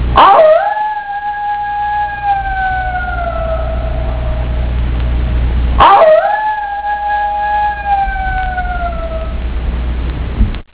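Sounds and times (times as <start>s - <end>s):
steady low hum: 0.0s - 10.7s
coyote howling: 0.2s - 4.8s, 5.8s - 9.4s.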